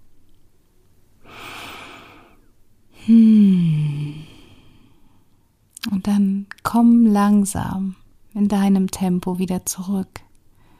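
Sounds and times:
deep breath: 0:01.2 - 0:05.3, 0:10.6 - 0:10.7
speech: 0:06.0 - 0:10.3.

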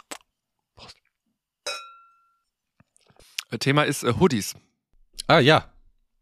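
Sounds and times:
glasses clinking in a toast: 0:01.7 - 0:02.4
speech: 0:03.5 - 0:04.7, 0:05.3 - 0:05.7.

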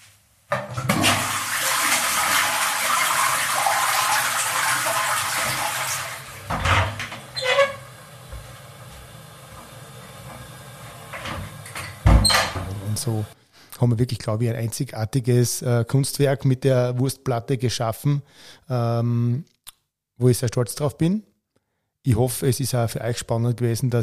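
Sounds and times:
clunks of toilet tank refilling: 0:00.5 - 0:13.4
toilet flushing: 0:00.6 - 0:13.4
water gurgling as the toilet tank refills: 0:00.9 - 0:07.7
speech: 0:13.0 - 0:19.5, 0:20.2 - 0:21.3, 0:22.0 - 0:24.0.

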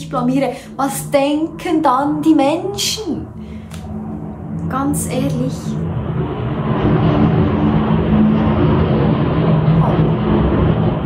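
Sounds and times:
speech: 0:00.0 - 0:03.4, 0:04.7 - 0:06.1
airplane passing overhead: 0:00.0 - 0:11.0.

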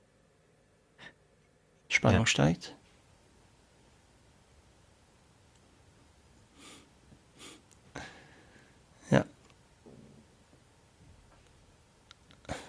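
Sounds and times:
speech: 0:02.0 - 0:02.8
man breathing: 0:06.5 - 0:08.9.

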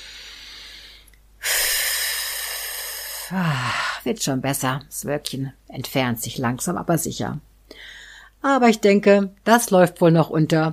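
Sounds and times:
person blowing out for a stress-relief exercise: 0:00.0 - 0:03.7
person breathing in for a stress-relief exercise: 0:00.0 - 0:04.1, 0:07.7 - 0:08.4
speech: 0:03.3 - 0:10.7.

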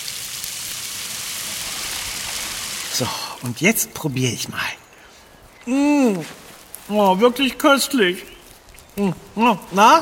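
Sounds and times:
running water rinsing food: 0:00.0 - 0:03.5
speech: 0:03.0 - 0:04.8, 0:05.6 - 0:08.3, 0:09.0 - 0:09.9.

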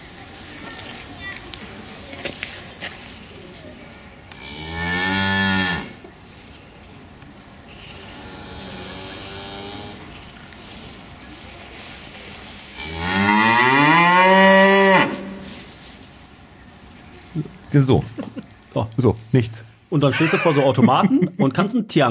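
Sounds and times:
steady high insect chirping: 0:00.0 - 0:21.3
cows mooing on an experience farm: 0:04.4 - 0:06.0, 0:07.9 - 0:10.1, 0:12.8 - 0:15.5
speech: 0:17.8 - 0:18.2, 0:18.9 - 0:22.0
laughter: 0:17.9 - 0:18.7, 0:20.1 - 0:21.6.

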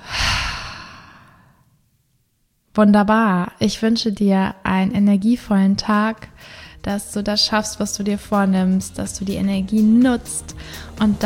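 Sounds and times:
deep breath in and out: 0:00.0 - 0:01.8, 0:06.4 - 0:06.8, 0:10.5 - 0:11.0
speech: 0:02.8 - 0:11.2.

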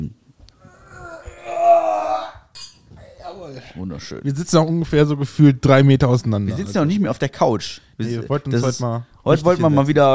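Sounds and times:
wine glasses clinking in a toast: 0:02.5 - 0:02.9
speech: 0:03.8 - 0:10.1.

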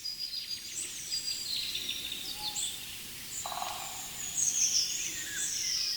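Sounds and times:
golden oriole singing: 0:00.0 - 0:05.9.

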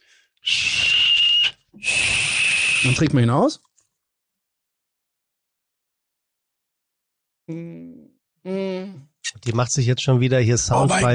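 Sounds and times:
whistle blown across the mouth of a small herbal liqueur bottle: 0:00.4 - 0:03.2
speech: 0:02.8 - 0:03.7, 0:07.5 - 0:07.8, 0:08.4 - 0:11.1.

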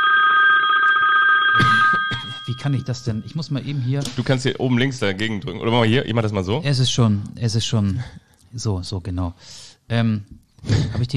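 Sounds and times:
modern phone ringtone: 0:00.0 - 0:03.5
speech: 0:02.5 - 0:11.1.

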